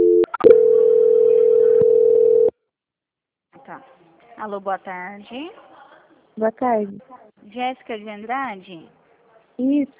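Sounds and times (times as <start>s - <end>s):
steady telephone tone during a call transfer: 0.0s - 2.5s
speech: 3.8s - 5.7s, 6.4s - 9.0s, 9.6s - 9.9s.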